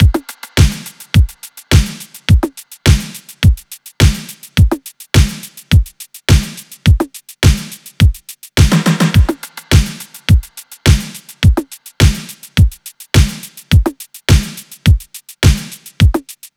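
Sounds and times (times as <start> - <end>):
full drum loop: 0.0 - 16.5.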